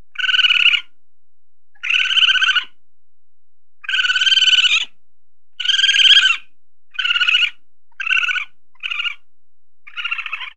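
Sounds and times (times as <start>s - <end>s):
raccoon chittering: 0.2s - 0.9s, 1.8s - 2.7s, 3.8s - 4.9s, 5.6s - 6.4s, 7.0s - 9.2s, 9.9s - 10.5s.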